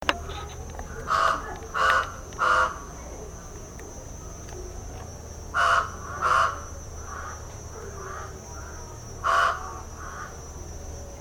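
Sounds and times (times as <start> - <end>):
pied crow calling: 0.1 - 3.0, 5.5 - 10.4.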